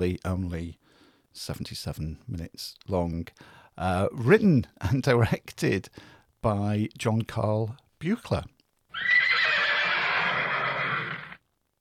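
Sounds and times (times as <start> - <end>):
speech: 0.0 - 9.3
horse whinnying: 8.9 - 11.4.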